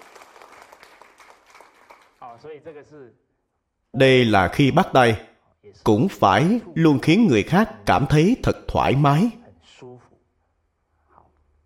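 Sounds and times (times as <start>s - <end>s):
crowd clapping steadily: 0.0s - 2.3s
speech: 2.3s - 3.3s, 3.9s - 9.4s.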